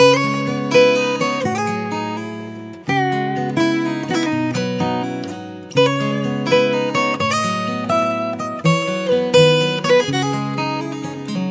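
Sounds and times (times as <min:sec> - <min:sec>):
Nokia 7 Plus retro guitar ringtone: 0:00.0 - 0:11.5.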